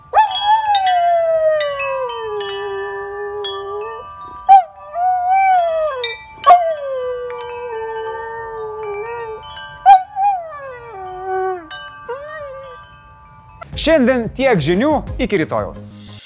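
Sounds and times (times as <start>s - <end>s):
dog howling a wavering song: 0.1s - 12.8s
speech: 13.8s - 16.0s.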